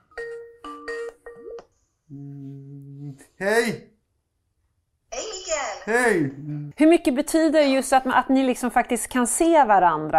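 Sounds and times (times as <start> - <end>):
video-call ringtone with bright electronic chimes: 0.0 - 1.6
speech: 3.4 - 3.9, 5.9 - 10.1.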